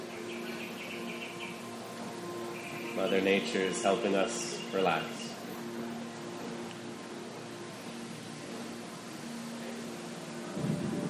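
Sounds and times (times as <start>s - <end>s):
birds chirping: 0.0s - 6.4s
speech: 3.0s - 5.2s.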